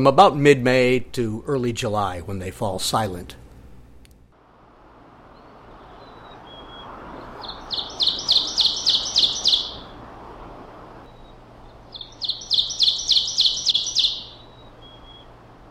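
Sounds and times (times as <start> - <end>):
speech: 0.0 - 3.4
ovenbird song: 5.3 - 10.2, 11.0 - 15.4.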